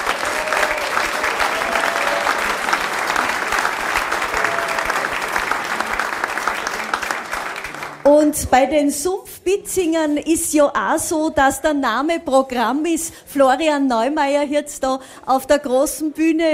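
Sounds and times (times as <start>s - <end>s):
audience applause: 0.0s - 8.1s
speech: 8.2s - 16.5s.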